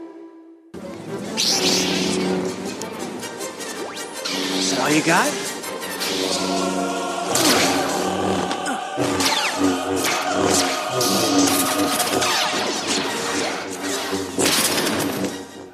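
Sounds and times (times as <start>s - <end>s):
laser sword swooshing swings: 1.3s - 2.8s, 3.6s - 8.2s, 8.7s - 15.4s
movie-style laser swords buzzing hum: 1.3s - 15.7s
laser swords sharp clashing strikes: 3.9s - 15.5s
speech: 4.9s - 5.5s.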